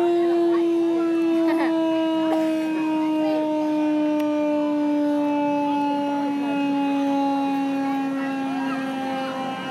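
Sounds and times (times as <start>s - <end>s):
old U.S. Army military police car siren wailing: 0.0s - 9.7s.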